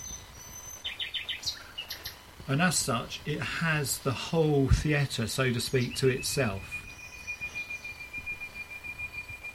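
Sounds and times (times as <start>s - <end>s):
nightingale singing at night: 0.0s - 2.3s, 4.4s - 9.5s
speech: 2.5s - 6.8s.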